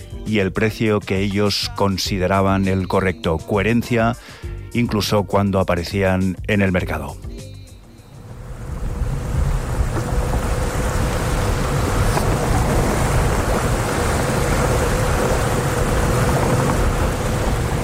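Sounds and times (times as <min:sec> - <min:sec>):
speech: 0:00.3 - 0:07.3
continuous low rumble of a boat engine: 0:07.9 - 0:17.8
sea ambience on the Mediterranean off the coast of Barcelona: 0:07.9 - 0:17.8
wind buffeting: 0:08.2 - 0:17.8
wash of water: 0:08.3 - 0:17.8.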